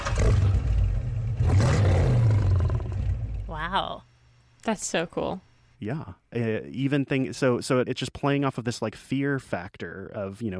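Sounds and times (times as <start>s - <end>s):
car engine roar: 0.0s - 3.5s
deep animal growl: 0.0s - 3.5s
speech: 4.7s - 10.5s.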